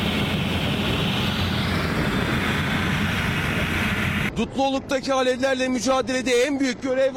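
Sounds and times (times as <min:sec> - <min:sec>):
firefighting helicopter engine and rotor roar while scooping water into its bucket during a wildfire: 0:00.0 - 0:04.3
speech: 0:04.4 - 0:07.1.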